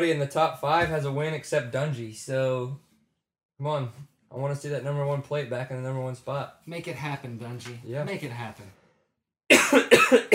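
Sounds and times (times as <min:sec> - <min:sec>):
speech: 0:00.0 - 0:02.9, 0:03.6 - 0:08.8, 0:09.7 - 0:10.3
loud harsh cough: 0:09.5 - 0:10.3.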